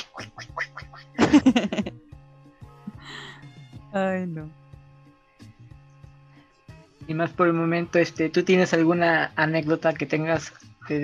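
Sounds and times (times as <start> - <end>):
person imitating duck quacks: 0.0 - 1.2
laughter: 1.2 - 1.9
speech: 4.0 - 4.6, 7.2 - 11.0.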